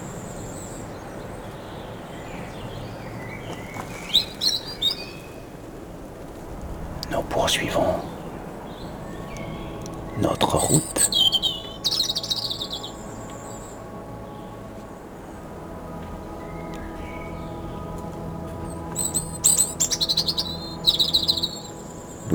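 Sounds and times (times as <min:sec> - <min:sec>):
bird singing high chirps from a tree: 0:00.0 - 0:05.5, 0:07.0 - 0:22.3
steady low rumble of wind: 0:00.0 - 0:22.3
speech: 0:07.5 - 0:08.1.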